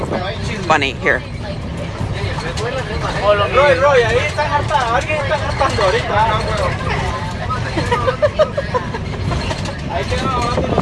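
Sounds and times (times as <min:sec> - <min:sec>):
low engine rumble of a moving bus: 0:00.0 - 0:10.7
passengers chattering inside a moving bus: 0:00.0 - 0:10.7
speech: 0:00.7 - 0:01.6, 0:02.4 - 0:07.0, 0:10.0 - 0:10.7
passengers laughing inside a moving bus: 0:05.2 - 0:10.1.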